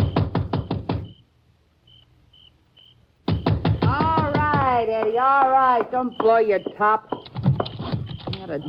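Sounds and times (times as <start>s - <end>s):
knocking on a house door: 0.0s - 1.2s, 3.2s - 8.2s
speech: 4.9s - 7.2s, 8.5s - 8.6s.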